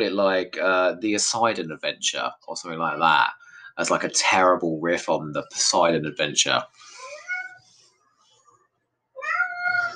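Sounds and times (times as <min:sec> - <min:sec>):
speech: 0:00.0 - 0:06.9
cat meowing: 0:07.1 - 0:07.6, 0:09.2 - 0:09.9.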